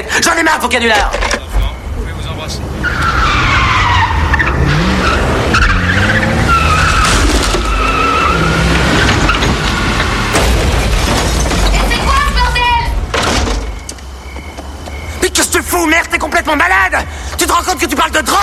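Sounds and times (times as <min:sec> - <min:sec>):
car tires screeching: 0:00.1 - 0:18.4
speech: 0:00.2 - 0:01.2, 0:16.4 - 0:18.4
car crashing into a house: 0:05.4 - 0:13.9.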